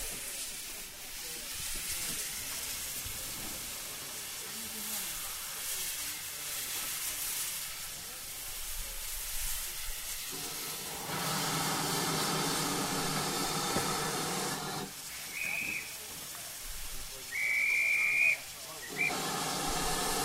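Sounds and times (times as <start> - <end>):
steam locomotive hissing at a station during a crew change: 0.0 - 20.2
high whistle-like squeal from a steam locomotive: 15.0 - 16.1, 17.3 - 19.8.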